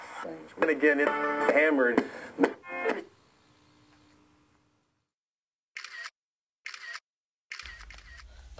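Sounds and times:
speech: 0.7 - 2.5
iPhone camera shutter clicks while taking a selfie: 5.8 - 8.3.

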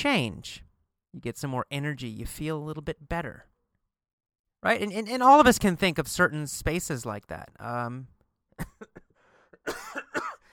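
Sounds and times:
speech: 0.0 - 0.6, 1.2 - 3.5, 4.6 - 10.2
throat clearing: 8.6 - 10.4
harsh raspy coughs: 8.6 - 10.5.

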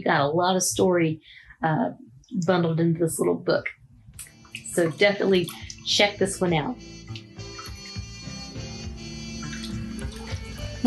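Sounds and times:
speech: 0.0 - 3.8, 4.8 - 7.0
chilly bathwater sloshing and swirling in a tub: 4.3 - 10.8.

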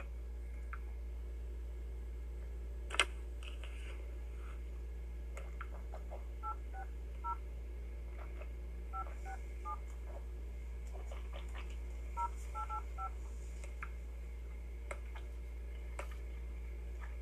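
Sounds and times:
low steady hum: 0.0 - 17.2
touch-tone phone keypad tones: 12.2 - 13.1.

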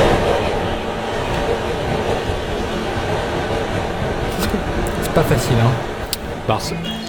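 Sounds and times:
Tokyo subway train running with rumble and rattling: 0.2 - 4.3
speech: 5.2 - 5.9, 6.5 - 7.0.

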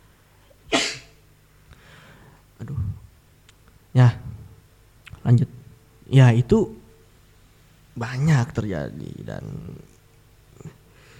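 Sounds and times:
sneeze: 0.7 - 1.2
speech: 2.6 - 3.0, 6.1 - 6.8, 8.0 - 9.9.

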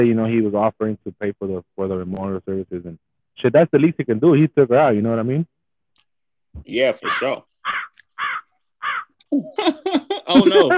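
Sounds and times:
speech: 0.0 - 5.6, 6.6 - 8.4, 9.3 - 10.7
crows cawing while attacking someone outdoors: 7.0 - 9.2
laughter: 9.3 - 10.7.

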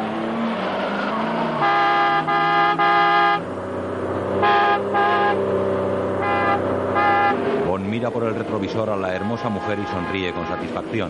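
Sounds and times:
car engine drone overtaking on a road curve: 0.0 - 11.0
car horn honks: 1.5 - 3.4, 4.4 - 5.4, 6.2 - 7.4, 8.9 - 11.0
speech: 8.1 - 11.0.

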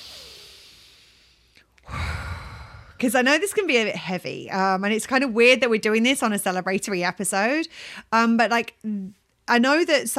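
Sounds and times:
person breathing deeply: 0.0 - 3.1, 7.7 - 8.1
speech: 3.0 - 10.1.

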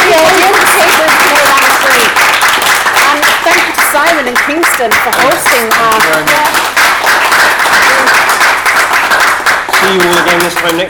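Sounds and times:
audience applauding: 0.0 - 10.8
speech: 4.8 - 6.4, 9.9 - 10.8.

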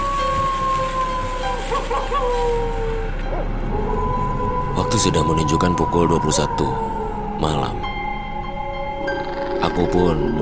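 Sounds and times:
bamboo leaves rustling: 0.0 - 3.4
dog howling after dusk: 0.0 - 9.9
speech: 5.0 - 7.9, 9.7 - 10.4.

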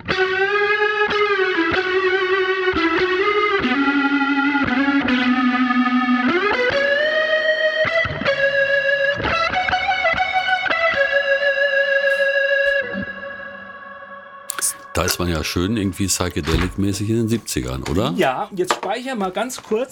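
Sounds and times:
overdriven electric guitar through rotary speaker effect: 0.0 - 14.5
speech: 15.0 - 19.9.

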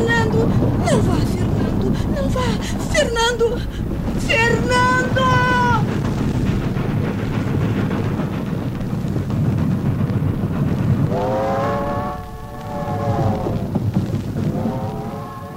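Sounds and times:
train rumbling: 0.0 - 15.5
speech: 0.6 - 5.4
train horn or whistle: 11.1 - 15.5.

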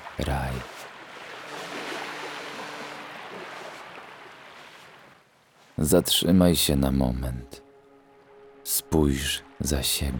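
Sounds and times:
sea waves washing onto a sandy beach: 0.0 - 5.8
speech: 0.2 - 0.8, 5.8 - 7.6, 8.7 - 10.1.

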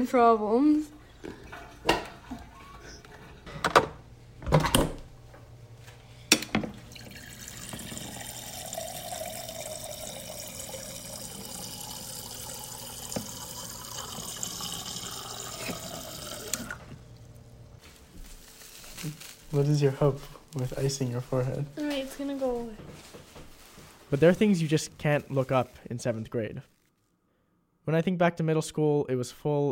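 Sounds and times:
speech: 0.0 - 2.0, 19.6 - 22.6, 24.1 - 26.8, 27.9 - 29.7
ice clinking and clattering being handled: 6.8 - 16.9
water running from tap filling a sink or container: 6.8 - 17.2.

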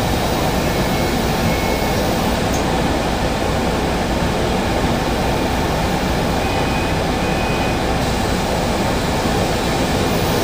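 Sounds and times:
bus engine rumble while travelling through the city: 0.0 - 10.4
bus road roar: 0.0 - 10.4.

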